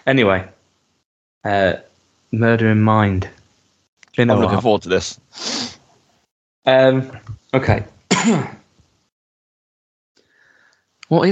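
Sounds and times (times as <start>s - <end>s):
speech: 0.0s - 0.5s, 1.4s - 3.4s, 4.2s - 5.8s, 6.6s - 8.6s, 11.1s - 11.3s
person coughing: 8.1s - 8.7s.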